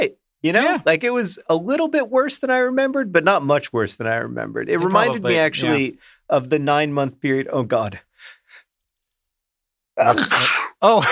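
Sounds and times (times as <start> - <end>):
speech: 0.0 - 8.4, 10.0 - 11.1
short vocal exclamation: 4.8 - 5.9
loud sneeze: 10.0 - 11.1.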